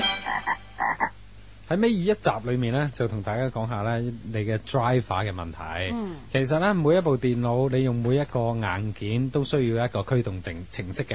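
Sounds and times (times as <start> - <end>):
edible frog croaking: 0.0 - 1.2
speech: 1.7 - 11.1.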